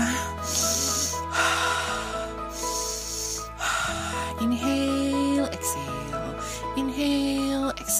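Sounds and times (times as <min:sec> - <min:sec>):
slow deep breaths drawn in and pushed out: 0:00.0 - 0:04.4
musical backing with a deep repeating bass line: 0:00.0 - 0:07.9.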